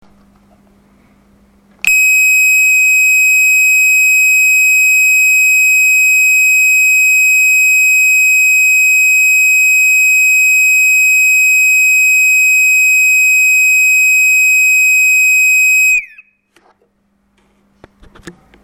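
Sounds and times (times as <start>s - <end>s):
continuous tone: 1.9s - 16.2s.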